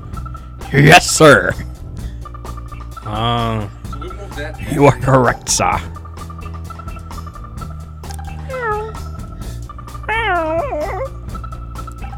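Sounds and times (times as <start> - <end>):
speech: 0.7 - 1.7, 3.1 - 3.8, 4.4 - 6.0
cat meowing: 8.5 - 9.1, 10.1 - 11.2.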